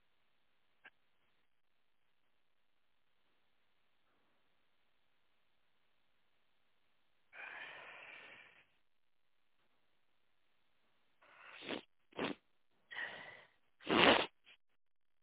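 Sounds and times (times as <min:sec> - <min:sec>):
long breathy inhale: 0:07.3 - 0:08.8
short sharp nasal sniffles: 0:07.4 - 0:08.8, 0:11.2 - 0:14.6.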